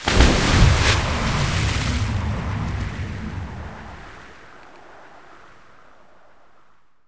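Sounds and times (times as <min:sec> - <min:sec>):
water entering: 0:00.0 - 0:05.1.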